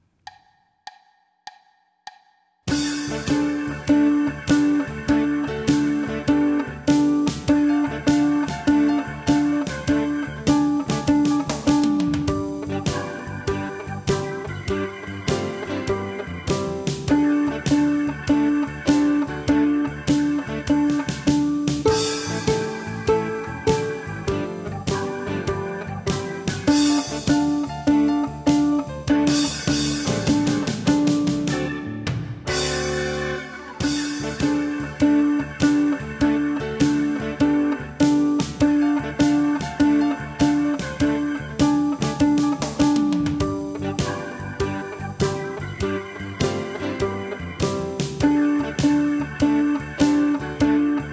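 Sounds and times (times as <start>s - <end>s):
guitar playing blues on open strings: 2.7s - 51.1s.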